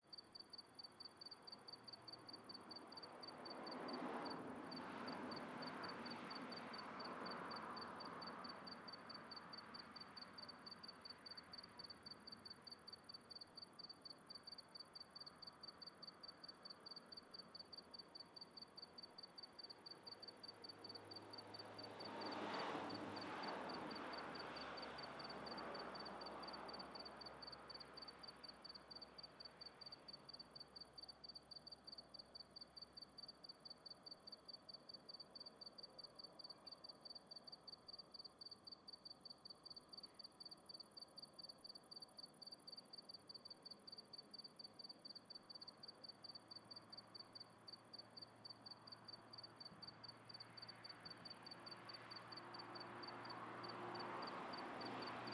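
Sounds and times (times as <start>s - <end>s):
crickets chirping on a country night: 0.1s - 55.3s
car passing: 20.7s - 27.8s, 49.1s - 55.3s.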